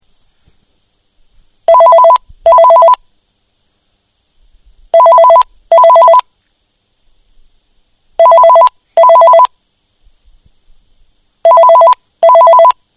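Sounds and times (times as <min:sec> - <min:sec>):
phone ringtone: 0:01.7 - 0:03.0, 0:05.0 - 0:06.2, 0:08.2 - 0:09.5, 0:11.5 - 0:12.8.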